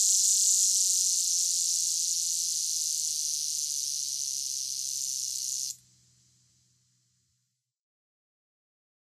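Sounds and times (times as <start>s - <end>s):
lyric cicada buzzing song in North America: 0.0s - 6.8s.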